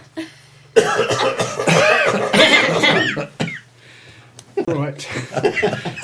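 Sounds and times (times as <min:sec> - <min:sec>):
person coughing in rough rasping bursts: 0:00.8 - 0:03.7
speech: 0:04.8 - 0:06.0.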